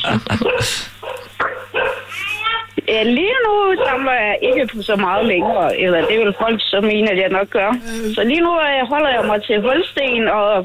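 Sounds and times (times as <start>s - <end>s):
speech: 0.1s - 1.0s, 2.9s - 10.6s
several dogs barking: 0.3s - 2.2s, 3.6s - 6.8s, 9.0s - 10.0s.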